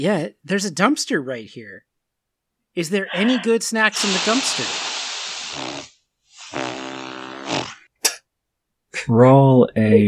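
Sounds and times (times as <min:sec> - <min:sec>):
speech: 0:00.0 - 0:01.9, 0:02.8 - 0:04.9, 0:06.5 - 0:06.7, 0:09.0 - 0:10.0
buzzy sigh with lips flapping and vibrating: 0:03.1 - 0:05.8
long breathy exhale: 0:03.1 - 0:06.7
brief sharp puff of breath: 0:03.1 - 0:07.8.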